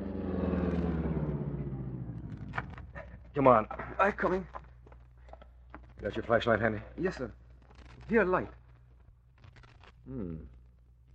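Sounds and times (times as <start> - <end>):
car engine rumbling as the car pulls over and stops: 0.0 - 5.1
speech: 3.4 - 4.6, 6.0 - 7.4, 8.1 - 8.6, 10.1 - 10.6.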